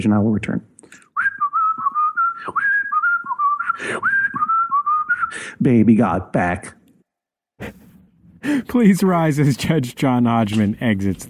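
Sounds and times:
speech: 0:00.0 - 0:01.1, 0:03.8 - 0:04.1, 0:05.3 - 0:06.8, 0:08.4 - 0:11.2
person whistling a wavering tune: 0:01.2 - 0:05.4.

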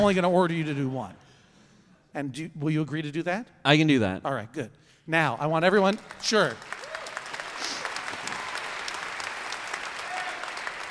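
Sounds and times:
speech: 0:00.0 - 0:01.2, 0:02.1 - 0:06.8
audience applause: 0:05.8 - 0:10.9.

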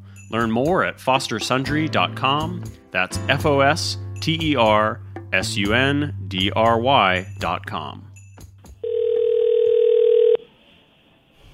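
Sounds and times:
speech: 0:00.3 - 0:08.1
telephone dial tone while dialing out a call: 0:08.8 - 0:10.4.

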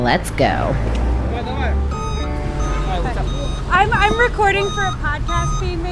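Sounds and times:
speech: 0:00.0 - 0:02.0, 0:03.8 - 0:05.9
moving truck engine rumbling: 0:00.0 - 0:05.9
brief steady electronic tone: 0:01.5 - 0:05.7.

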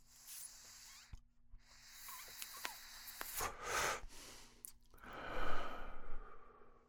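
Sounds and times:
hissing inhale from a General Admission blinker vape pen with tiger blood pod: 0:00.0 - 0:06.4
breathy exhale after vape pen draw: 0:01.7 - 0:06.8.

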